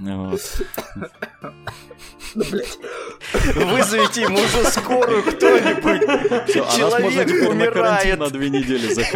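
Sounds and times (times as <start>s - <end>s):
speech: 0.0s - 9.1s
laughter: 0.3s - 9.1s
person coughing: 0.4s - 3.6s.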